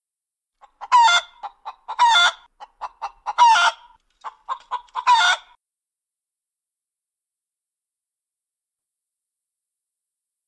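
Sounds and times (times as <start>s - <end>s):
chicken squawking: 0.6s - 5.6s.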